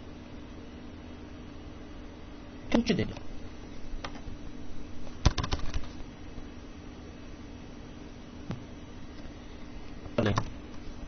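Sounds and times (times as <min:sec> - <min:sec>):
speech: 0:02.7 - 0:03.3
computer keyboard taps: 0:05.2 - 0:05.9, 0:10.3 - 0:10.6.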